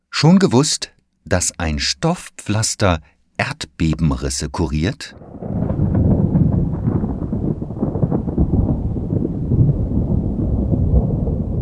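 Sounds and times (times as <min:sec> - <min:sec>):
speech: 0:00.2 - 0:06.0
deep rumbling thunder: 0:05.1 - 0:11.5.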